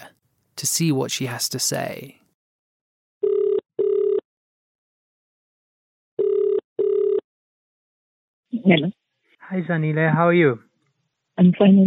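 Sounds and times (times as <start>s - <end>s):
speech: 0.6s - 2.2s, 8.7s - 10.7s, 11.4s - 11.8s
phone ringback tone in double-burst pattern: 3.2s - 4.2s, 6.2s - 7.2s.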